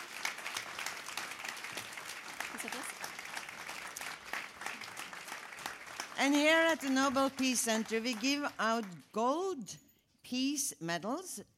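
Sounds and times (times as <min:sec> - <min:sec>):
audience applause: 0:00.0 - 0:08.6
speech: 0:06.2 - 0:11.5.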